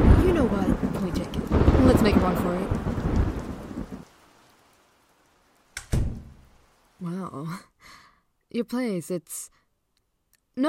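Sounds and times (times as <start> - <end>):
heavy rain downpour: 0.0 - 8.1
speech: 8.5 - 9.6.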